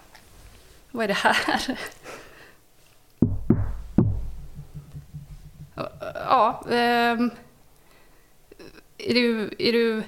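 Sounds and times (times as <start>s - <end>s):
speech: 0.9s - 2.0s, 6.3s - 7.4s, 9.0s - 10.0s
sharp knocks: 3.2s - 7.0s.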